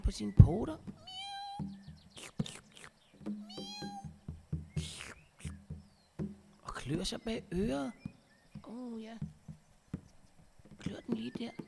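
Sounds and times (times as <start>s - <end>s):
steady rhythmic sound: 0.0s - 11.6s
speech: 0.1s - 1.2s, 6.9s - 8.1s, 8.7s - 9.3s, 10.9s - 11.6s
person imitating a cat with drawn-out meows: 1.0s - 4.2s.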